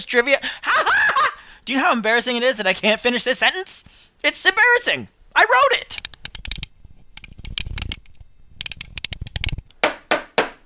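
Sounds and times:
speech: 0.1s - 1.0s, 1.6s - 6.1s
small clicks and rattles: 5.9s - 9.8s.

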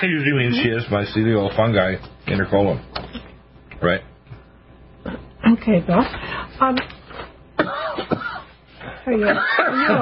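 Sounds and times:
speech: 0.0s - 3.2s, 3.8s - 4.1s, 5.0s - 7.0s, 9.0s - 9.9s
short harsh coughs: 7.6s - 8.5s, 9.2s - 9.9s.

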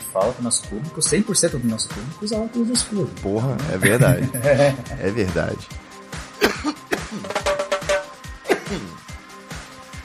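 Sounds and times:
speech: 0.1s - 5.9s
laughter: 3.8s - 5.0s
person coughing: 6.4s - 7.4s, 8.4s - 9.0s
throat noises: 8.5s - 9.0s.

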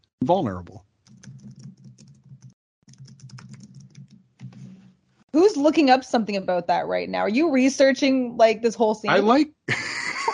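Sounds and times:
speech: 0.2s - 0.9s, 5.4s - 9.9s
man typing on a computer keyboard: 1.1s - 4.6s.

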